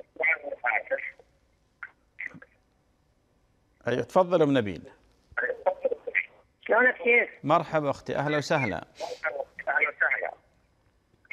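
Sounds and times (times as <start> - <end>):
television voices over a telephone line: 0.0 - 2.7, 5.4 - 10.5
speech: 3.9 - 5.0, 6.7 - 9.3.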